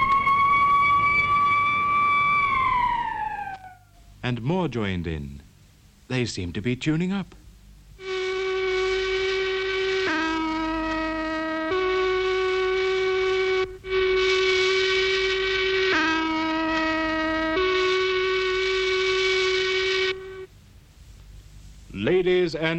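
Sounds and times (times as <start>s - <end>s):
steam factory whistles blowing: 0.0s - 4.2s, 8.0s - 20.5s
speech: 4.3s - 5.4s, 6.1s - 7.4s, 22.5s - 22.7s.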